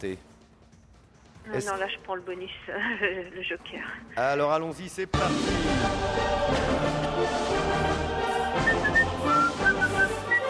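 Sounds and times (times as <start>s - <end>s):
speech: 0.0s - 0.3s, 1.4s - 9.0s
person whistling a tune: 8.6s - 10.4s.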